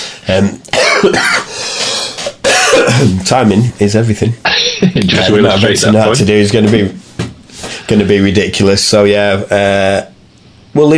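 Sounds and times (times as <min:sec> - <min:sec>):
speech: 0:00.3 - 0:01.5, 0:02.8 - 0:07.0, 0:07.9 - 0:10.1, 0:10.8 - 0:10.9
person coughing: 0:00.7 - 0:01.6, 0:02.2 - 0:03.2, 0:04.4 - 0:05.0.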